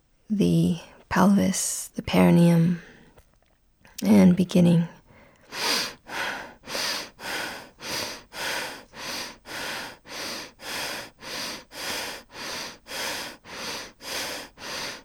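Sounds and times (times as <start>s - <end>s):
speech: 0.3s - 2.9s, 4.0s - 6.0s
rapid rhythmic breathing from a pelvic-focused breathing exercise: 5.0s - 15.0s.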